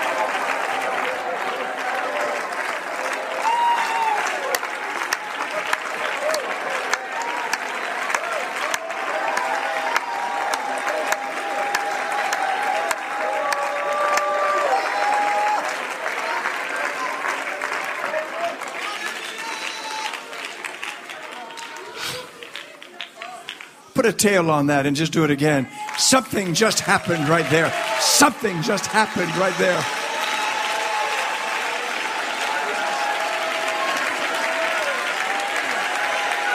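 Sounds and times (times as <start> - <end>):
large crowd clapping: 0.0 - 24.6, 25.6 - 36.5
speech: 24.0 - 30.0
people shouting: 26.8 - 36.5.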